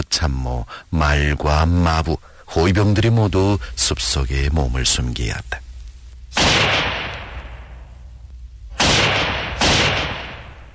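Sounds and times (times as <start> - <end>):
speech: 0.1 - 5.6
loud sharp gunshots with decay: 6.3 - 7.8, 8.7 - 10.7.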